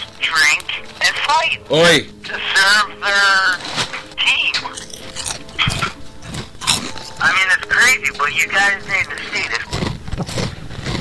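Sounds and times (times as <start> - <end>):
speech: 1.3 - 3.7, 7.9 - 9.6
animal chewing with crunches: 3.6 - 10.9.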